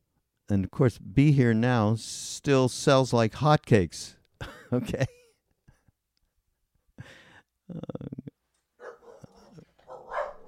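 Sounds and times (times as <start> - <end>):
speech: 0.5 - 5.2, 7.0 - 8.2
dog barking and growling in rough bursts: 8.8 - 10.4.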